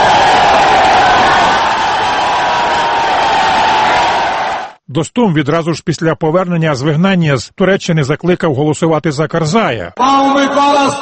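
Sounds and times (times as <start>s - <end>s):
crowd of supporters cheering in Sheberghan, northern Afghanistan: 0.0s - 4.8s
speech: 5.0s - 10.9s.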